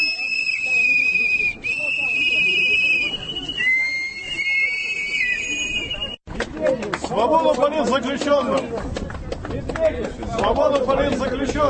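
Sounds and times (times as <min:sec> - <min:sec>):
protest crowd whistling: 0:00.0 - 0:06.2
steady rumble of crowd noise: 0:00.0 - 0:11.6
speech: 0:07.2 - 0:11.6.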